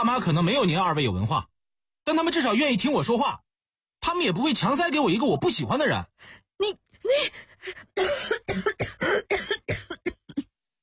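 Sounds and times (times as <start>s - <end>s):
speech: 0.0s - 3.4s, 4.0s - 9.9s
woman recovering from pneumonia coughing in a fit: 8.0s - 10.5s.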